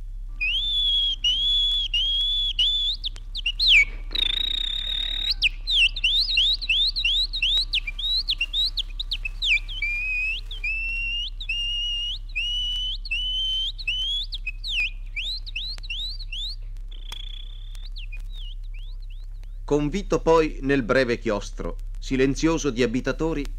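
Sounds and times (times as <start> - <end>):
low steady hum: 0.0 - 23.5
peasant whistling an imitation of nightingale song: 0.4 - 20.2
speech: 19.7 - 23.5.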